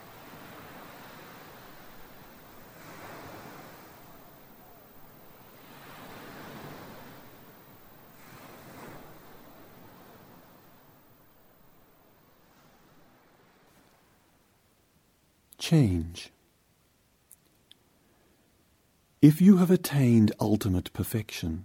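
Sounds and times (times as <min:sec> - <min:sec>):
ocean waves breaking on the shore: 0:00.0 - 0:14.4
speech: 0:15.6 - 0:16.4, 0:19.2 - 0:21.6.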